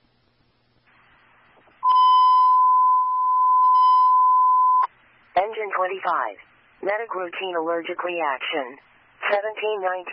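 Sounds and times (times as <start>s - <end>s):
fire department dispatch alert tone: 1.8s - 4.9s
speech: 5.8s - 10.1s.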